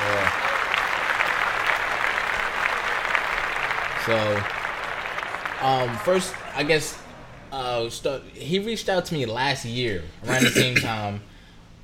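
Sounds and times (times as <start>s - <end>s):
applause from many hands: 0.0s - 7.4s
speech: 4.0s - 4.6s, 5.6s - 11.8s.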